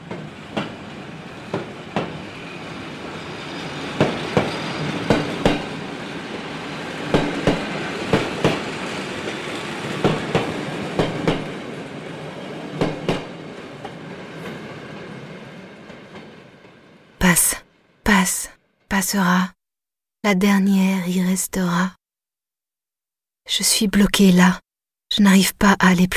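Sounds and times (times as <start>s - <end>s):
train wheels clacking over track joints: 0.0s - 2.3s, 3.9s - 16.9s
train rumbling past on rails: 0.0s - 17.9s
speech: 19.1s - 19.6s, 20.2s - 22.0s, 23.5s - 26.1s.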